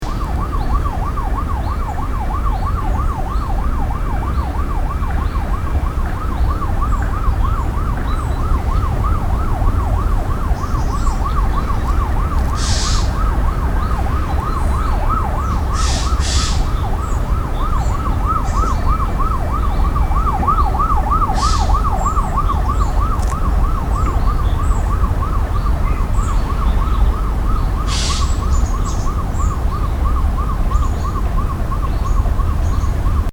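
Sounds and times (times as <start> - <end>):
siren with vibrato: 0.0 - 33.3.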